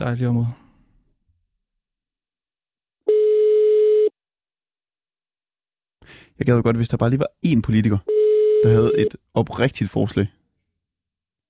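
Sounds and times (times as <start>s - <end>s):
speech: 0.0s - 0.6s, 6.1s - 10.4s
telephone ringback tone, call not answered: 3.1s - 4.1s, 8.1s - 9.1s.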